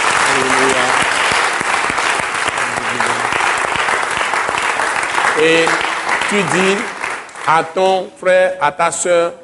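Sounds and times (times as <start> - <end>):
audience cheering and shouting: 0.0 - 7.0
audience clapping: 0.0 - 7.8
speech: 5.4 - 9.4.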